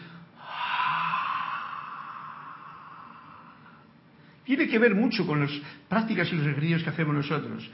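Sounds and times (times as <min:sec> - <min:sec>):
voice imitating a puma or panther hiss: 0:00.4 - 0:03.9
speech: 0:04.5 - 0:07.7.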